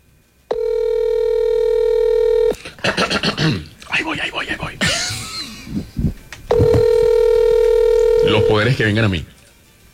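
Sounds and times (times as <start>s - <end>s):
telephone dialing tone: 0.5s - 2.6s, 6.5s - 8.7s
speech: 3.1s - 4.2s, 8.4s - 9.4s.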